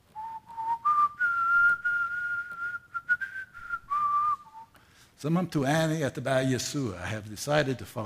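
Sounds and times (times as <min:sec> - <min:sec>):
person whistling a slow hymn tune: 0:00.1 - 0:05.0
speech: 0:05.2 - 0:08.0.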